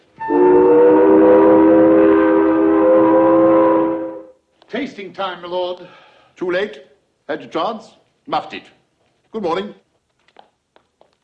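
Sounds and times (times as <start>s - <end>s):
whistle blown through holes in sweet: 0.0s - 4.4s
speech: 4.8s - 9.8s.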